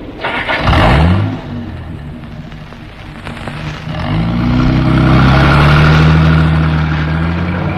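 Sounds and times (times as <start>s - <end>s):
car engine starting: 0.0s - 7.7s
constant hiss: 1.2s - 5.2s.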